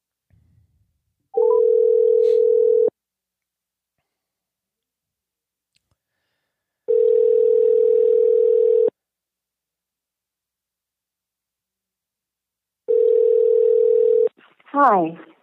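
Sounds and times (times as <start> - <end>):
phone ringback tone on an outgoing call: 1.4 - 2.9, 6.9 - 8.9, 12.9 - 14.3
speech: 14.8 - 15.3.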